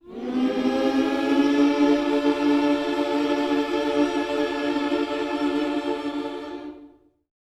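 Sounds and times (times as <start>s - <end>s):
gospel vocals in a minor key: 0.0s - 7.1s.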